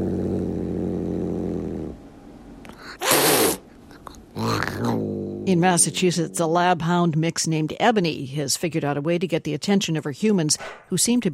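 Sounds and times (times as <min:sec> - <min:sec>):
tuxedo cat growling at kittens in a home in Rhode Island: 0:00.0 - 0:02.0, 0:02.7 - 0:06.8
tuxedo cat hissing at kittens in a home in Rhode Island: 0:02.7 - 0:06.4
speech: 0:05.5 - 0:11.3.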